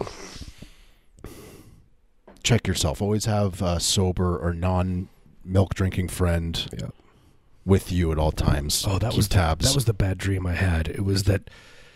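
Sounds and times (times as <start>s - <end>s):
heavy breathing into the microphone: 0.0s - 1.9s, 11.5s - 11.9s
speech: 2.4s - 7.0s, 7.6s - 11.8s.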